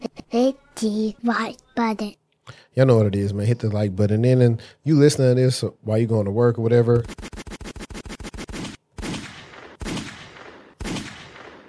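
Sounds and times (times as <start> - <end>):
speech: 0.4 - 7.3
gunshot sound effects: 7.0 - 11.6.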